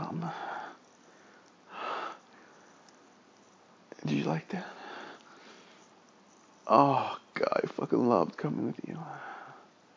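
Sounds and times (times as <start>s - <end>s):
airy breathing at the microphone: 0.0s - 2.9s, 4.6s - 5.9s
soft hiss: 0.0s - 9.9s
speech: 4.0s - 4.8s, 6.7s - 9.3s.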